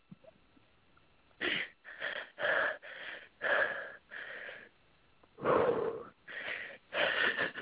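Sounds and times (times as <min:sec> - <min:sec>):
strained wheezing breaths through a tight throat: 0:01.4 - 0:04.7, 0:05.4 - 0:07.5.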